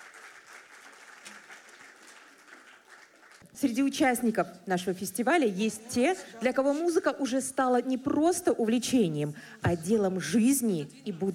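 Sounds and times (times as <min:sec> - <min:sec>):
audience applause for performers at a music festival: 0:00.0 - 0:03.4
speech: 0:03.6 - 0:11.3.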